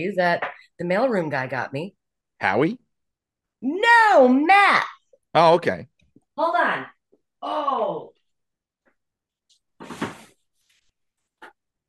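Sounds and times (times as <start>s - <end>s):
speech: 0.0s - 2.8s, 3.6s - 8.1s
chair being dragged out: 9.8s - 10.4s.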